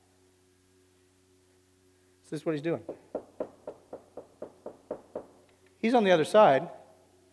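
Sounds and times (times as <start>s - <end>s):
speech: 2.3s - 3.4s, 5.8s - 6.8s
knocking on a door: 2.9s - 5.4s.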